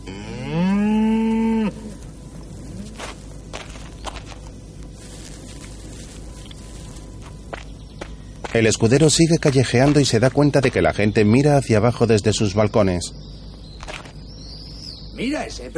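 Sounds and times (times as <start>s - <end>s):
speech: 0.0s - 0.3s, 8.6s - 13.4s, 15.2s - 15.7s
bull mooing while grazing behind wooden fencing: 0.0s - 3.1s
rustling: 1.3s - 8.6s.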